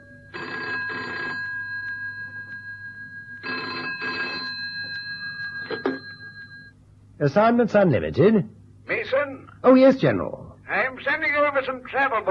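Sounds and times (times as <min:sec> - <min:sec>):
telephone bell ringing in double-ring bursts: 0:00.0 - 0:06.8
speech: 0:07.2 - 0:08.6, 0:09.6 - 0:10.4, 0:11.0 - 0:12.2.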